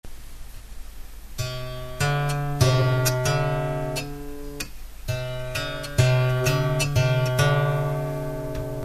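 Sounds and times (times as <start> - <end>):
music built on a minor second interval: 1.4 - 8.8.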